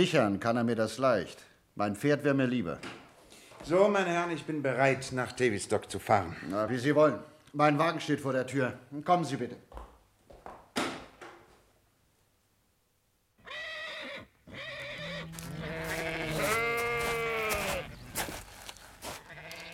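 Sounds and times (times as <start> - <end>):
speech: 0.0 - 3.0, 3.6 - 9.9
sheep bleating in a paddock: 13.4 - 19.7.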